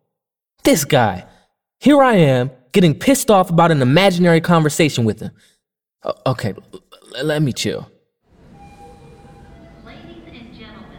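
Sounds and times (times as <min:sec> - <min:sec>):
speech: 0:00.7 - 0:07.9
subway door closing tones: 0:08.3 - 0:10.2
thin high whine of subway train: 0:08.3 - 0:10.4
subway train idling at a station: 0:08.3 - 0:10.9.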